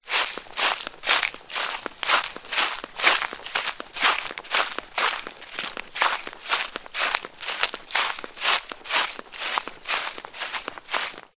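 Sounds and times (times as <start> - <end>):
flip flop footsteps on grass: 0.0 - 11.3.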